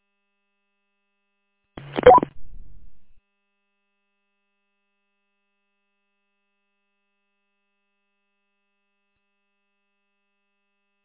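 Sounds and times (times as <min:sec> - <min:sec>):
radio roger beep closing a transmission: 0:01.8 - 0:03.2.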